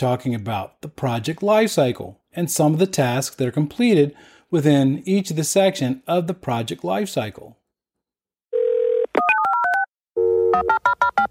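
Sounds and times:
speech: 0.0 - 7.6, 10.6 - 11.2
telephone dial tone: 8.6 - 11.2.

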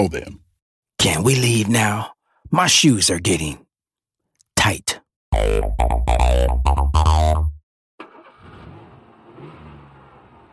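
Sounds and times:
speech: 0.0 - 0.4, 1.0 - 3.6, 4.6 - 7.6
small car engine sputtering and revving: 8.0 - 10.5.

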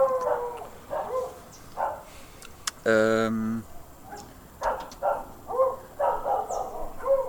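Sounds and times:
dogs barking excitedly in garden: 0.0 - 2.2, 3.7 - 7.2
person hesitating: 2.6 - 3.7
speech: 2.8 - 3.7.

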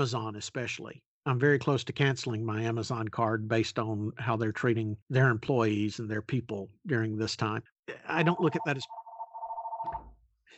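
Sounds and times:
speech: 0.0 - 9.0
landline telephone ringing with a fast warbling electronic trill: 8.1 - 10.1.

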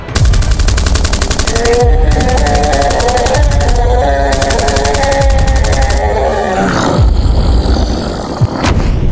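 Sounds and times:
pistol gunshots fired at giants: 0.2 - 6.0
giants roaring and grunting: 3.7 - 9.0.

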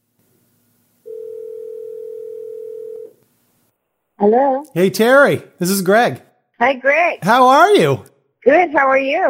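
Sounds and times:
telephone dial tone: 1.1 - 3.2
speech: 4.2 - 9.2.

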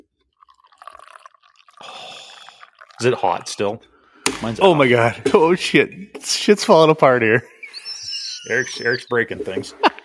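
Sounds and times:
coffee pouring into a cup: 0.2 - 3.7
speech: 3.0 - 7.5, 8.4 - 9.9.

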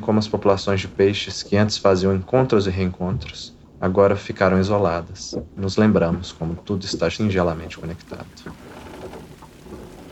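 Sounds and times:
speech: 0.1 - 8.6
steady rain pouring down: 7.6 - 10.1.

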